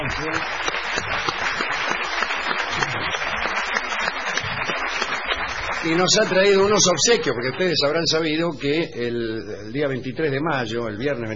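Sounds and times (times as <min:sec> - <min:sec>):
crowd applause for a visiting Argentine conductor: 0:00.0 - 0:08.2
speech: 0:00.1 - 0:01.4, 0:05.8 - 0:11.3.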